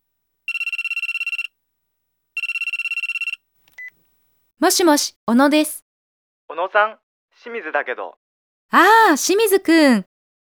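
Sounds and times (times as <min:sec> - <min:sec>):
telephone ringing with an incoming call: 0:00.5 - 0:01.5, 0:02.4 - 0:04.0
speech: 0:04.6 - 0:05.8, 0:06.5 - 0:10.1.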